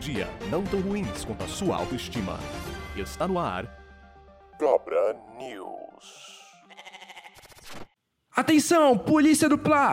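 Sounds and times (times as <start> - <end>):
speech: 0.0 - 3.8, 4.6 - 6.2, 8.4 - 9.9
goat bleating: 6.3 - 7.6.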